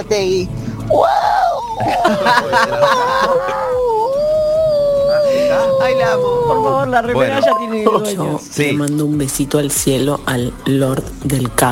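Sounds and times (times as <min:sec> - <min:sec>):
speech: 0:00.0 - 0:03.9, 0:05.4 - 0:11.7
person imitating a dog's howl: 0:00.9 - 0:01.9, 0:03.3 - 0:06.7
laughter: 0:01.6 - 0:04.1.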